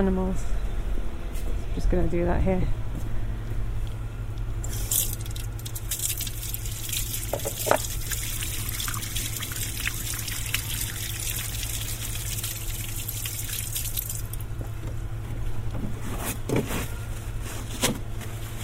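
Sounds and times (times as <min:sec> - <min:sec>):
speech: 0:00.0 - 0:00.6, 0:01.8 - 0:02.8
constant low hum: 0:00.0 - 0:17.6
hands being washed under a tap at an outdoor sink on a city farm: 0:04.6 - 0:14.5
water running from a tap into a white porcelain basin at an outdoor sink: 0:04.6 - 0:14.5.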